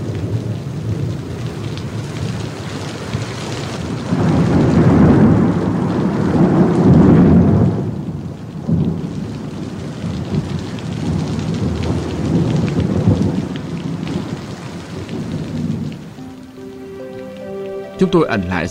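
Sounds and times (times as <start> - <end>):
heavy rain: 0.0 - 18.6
thunder rumbling: 3.8 - 16.2
speech: 18.0 - 18.6.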